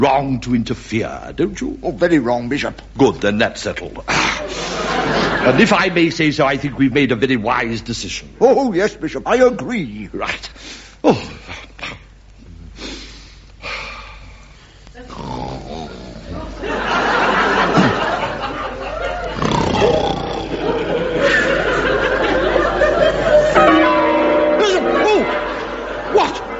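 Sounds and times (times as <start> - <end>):
speech: 0.0 - 11.6
laughter: 4.1 - 6.0, 16.2 - 26.5
church bells ringing: 21.8 - 26.5.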